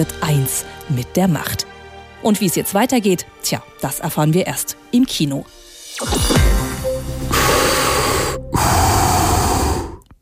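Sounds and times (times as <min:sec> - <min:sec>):
speech: 0:00.0 - 0:06.3
mechanical respirator breathing: 0:07.2 - 0:10.1.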